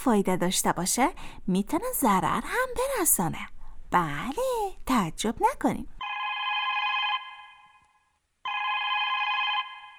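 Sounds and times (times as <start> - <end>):
speech: 0.0 - 6.0
telephone ringing with electronic trills: 6.0 - 7.8, 8.5 - 9.9.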